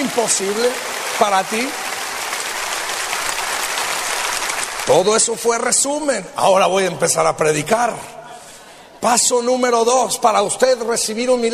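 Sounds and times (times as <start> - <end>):
church congregation applauding in thanks during a sermon: 0.0 - 6.1
speech: 0.1 - 1.9, 4.9 - 8.2, 9.0 - 11.5.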